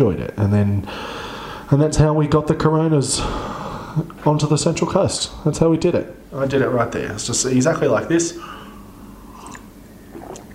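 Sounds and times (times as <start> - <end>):
speech: 0.0 - 8.6
person sipping beer with a slurp and swallow: 9.2 - 10.5.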